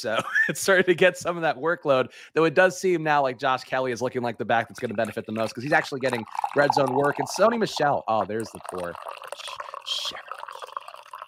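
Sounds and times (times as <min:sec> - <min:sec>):
speech: 0:00.0 - 0:09.3
beer pouring into a glass: 0:04.6 - 0:11.2.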